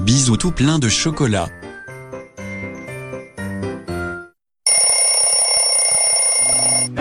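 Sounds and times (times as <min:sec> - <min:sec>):
speech: 0:00.2 - 0:01.6
shrill alarm clock ringing: 0:04.7 - 0:06.9.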